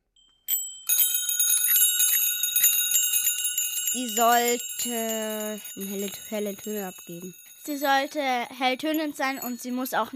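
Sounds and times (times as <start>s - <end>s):
bicycle bell ringing during a bell test: 0.0s - 10.1s
speech: 3.9s - 10.1s.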